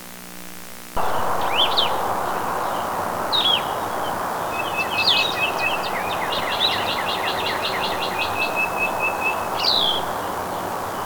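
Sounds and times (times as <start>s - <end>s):
vireo singing: 1.0s - 10.9s.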